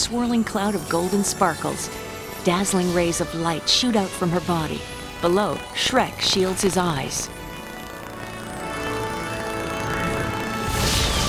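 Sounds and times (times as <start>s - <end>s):
speech: 0.0s - 7.4s
loud orchestral music: 0.8s - 11.2s.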